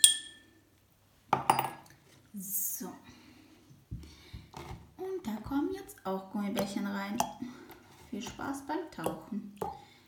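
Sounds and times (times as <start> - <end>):
spoon clinking against a glass while stirring salt into water: 0.0 - 0.5
speech: 2.4 - 3.0, 5.2 - 7.4, 8.1 - 9.7.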